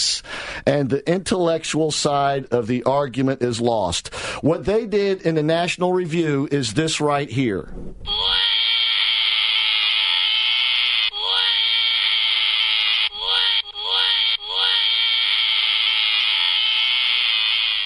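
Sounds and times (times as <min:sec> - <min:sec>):
speech: 0:00.6 - 0:08.4
shrill crying wail: 0:08.1 - 0:17.8.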